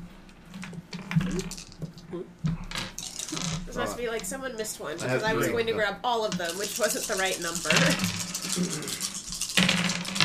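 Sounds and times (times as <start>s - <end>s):
dice clattering on a tabletop: 0.5s - 3.7s, 6.3s - 10.2s
speech: 1.3s - 2.4s, 3.9s - 9.1s.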